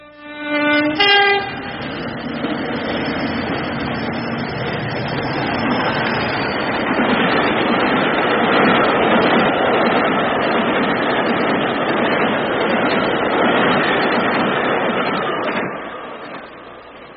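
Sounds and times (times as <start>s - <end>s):
train horn blast: 0.0s - 1.9s
big train wheels rumbling on rails: 0.6s - 17.1s.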